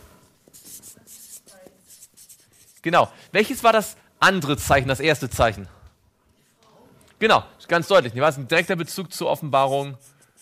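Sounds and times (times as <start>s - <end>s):
pen that won't write scratching across a surface: 0.4s - 2.8s, 9.4s - 10.4s
speech: 2.8s - 5.8s, 7.2s - 10.1s.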